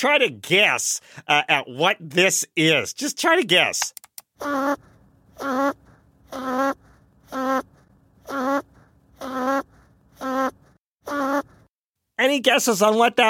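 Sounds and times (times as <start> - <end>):
speech: 0.0 - 11.5, 12.2 - 13.2
archival recording of a man snoring sped up: 4.4 - 11.7.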